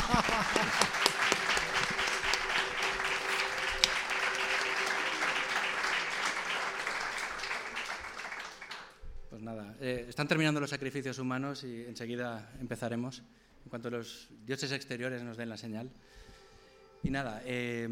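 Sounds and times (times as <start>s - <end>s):
laughter: 0.0s - 3.7s
audience applauding: 0.0s - 9.0s
speech: 10.1s - 16.3s, 17.0s - 17.9s.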